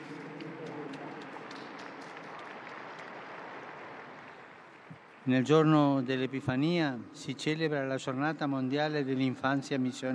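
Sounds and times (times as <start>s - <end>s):
large audience applauding: 0.0s - 4.9s
speech: 5.2s - 10.1s.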